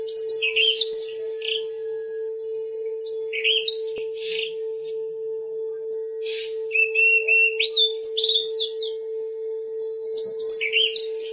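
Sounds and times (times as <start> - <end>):
Oriental magpie-robin song: 0.0 - 5.2, 5.8 - 9.2, 10.1 - 11.3.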